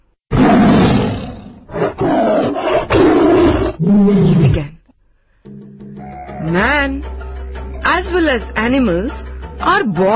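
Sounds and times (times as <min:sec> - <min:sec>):
tiger roaring: 0:00.3 - 0:04.6, 0:05.9 - 0:06.7
speech: 0:06.6 - 0:07.2, 0:08.0 - 0:10.1.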